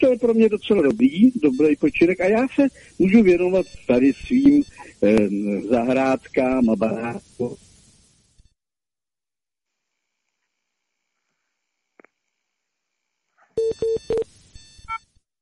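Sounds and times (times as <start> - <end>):
speech: 0.0 - 7.6
faint telephone line tones: 0.0 - 8.6
telephone line beeps as a phone call drops: 3.0 - 5.2, 13.6 - 15.0.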